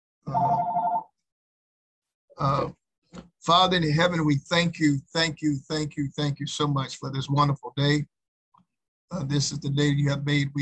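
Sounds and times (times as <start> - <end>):
phone ringing with a bright buzzing electronic trill: 0.3 - 1.1
speech: 2.4 - 8.1, 9.1 - 10.5.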